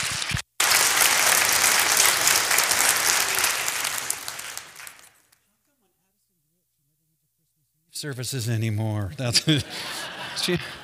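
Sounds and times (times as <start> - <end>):
crowd applause: 0.0 - 5.4
speech: 8.0 - 10.8
laughter: 9.1 - 10.8.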